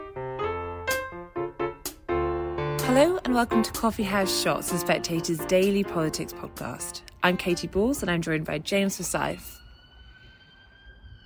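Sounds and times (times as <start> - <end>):
low city rumble heard from the roof of Parliament: 0.6 - 11.2
speech: 2.9 - 9.6
police siren wailing: 9.4 - 11.2.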